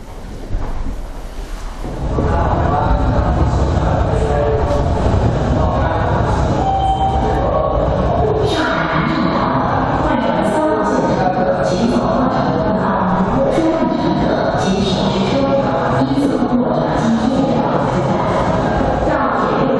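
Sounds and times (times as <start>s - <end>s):
subway train roaring into a busy underground station: 0.0s - 19.7s
subway train metallic squeals: 6.6s - 7.4s.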